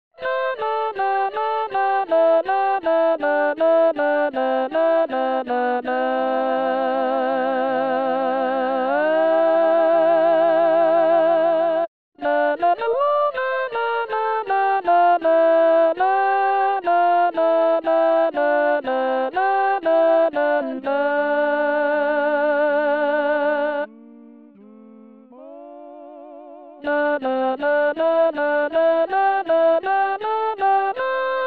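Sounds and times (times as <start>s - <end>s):
alto voice singing in a SATB choir: 0.2s - 31.4s.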